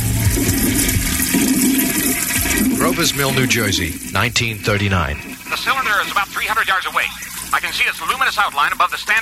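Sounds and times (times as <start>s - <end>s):
toilet in a bathroom flushing: 0.0s - 9.1s
speech: 3.0s - 9.1s.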